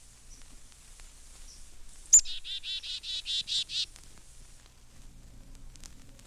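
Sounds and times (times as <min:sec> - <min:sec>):
black-capped chickadee call with sharp chip and buzzy dee notes: 0:02.1 - 0:03.9.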